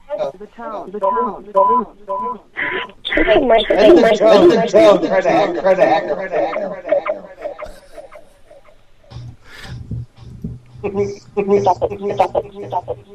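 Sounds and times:
several voices talking over a thin phone-like connection with echo: 0.0 - 7.8, 10.8 - 13.1
speech: 0.2 - 7.0, 10.8 - 13.1
laughter: 5.1 - 8.6.

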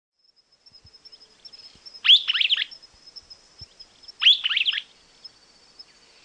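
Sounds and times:
streaked flycatcher subspecies solitarius giving squeaky chattering call phrases: 1.1 - 6.2.

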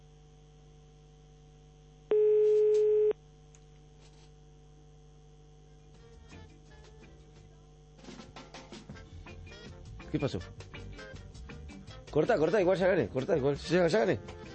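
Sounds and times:
telephone line tone while dialing a call: 2.1 - 3.2
speech: 10.1 - 10.7, 12.2 - 14.4.

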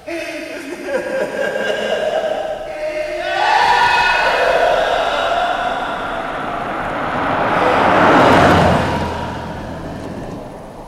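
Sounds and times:
laughter: 0.0 - 9.6
new Jaguar car engine and road hum slowing down and stopping at roadside: 3.0 - 10.8.

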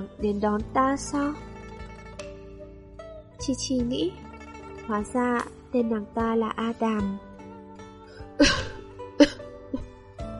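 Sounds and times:
speech: 0.0 - 1.5, 3.4 - 4.2, 4.9 - 7.3
dry coughs from one person: 8.4 - 9.9.

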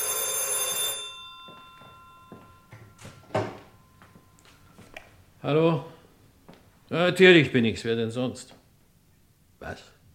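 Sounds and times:
old-style telephone bell ringing: 0.0 - 4.8
speech: 5.4 - 5.9, 6.9 - 8.6, 9.6 - 9.9.

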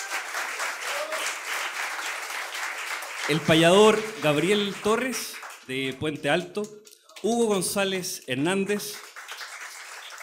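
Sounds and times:
audience applause at a university folk event: 0.0 - 6.0, 8.7 - 10.2
speech: 3.3 - 9.0.

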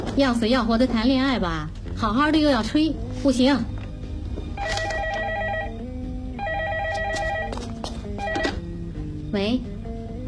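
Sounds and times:
speech: 0.2 - 3.8, 9.3 - 9.7
telephone ringing with an electronic trilling tone: 4.6 - 8.7.

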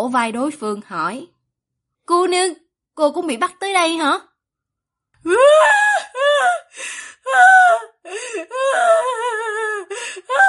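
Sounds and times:
speech: 0.0 - 1.3, 2.1 - 4.3, 5.2 - 10.4
young woman sobbing and wailing in distress: 5.2 - 10.4.

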